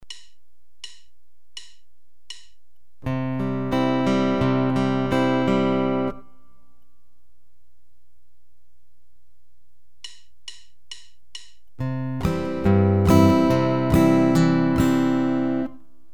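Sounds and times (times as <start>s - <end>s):
lullaby with thumb-brush patterns on guitar: 3.0s - 6.8s, 11.8s - 16.0s.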